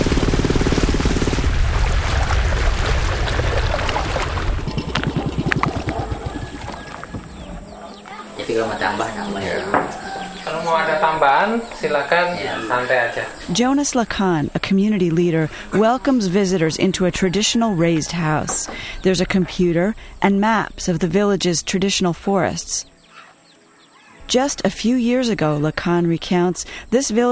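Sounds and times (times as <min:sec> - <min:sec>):
boat engine and spray on water: 0:00.0 - 0:07.3
speech: 0:08.6 - 0:09.8, 0:10.6 - 0:22.9, 0:24.3 - 0:27.2.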